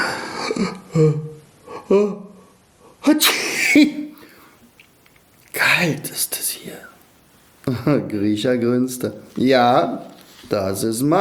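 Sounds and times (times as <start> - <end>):
speech: 0.6 - 1.3, 1.9 - 2.2, 3.0 - 4.0, 5.6 - 6.9, 7.7 - 11.1
voice acting out a sneeze: 3.0 - 4.4.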